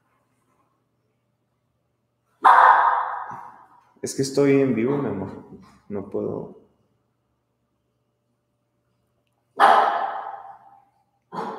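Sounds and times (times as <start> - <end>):
dog barking: 2.4 - 3.6, 9.6 - 11.5
speech: 4.0 - 6.6.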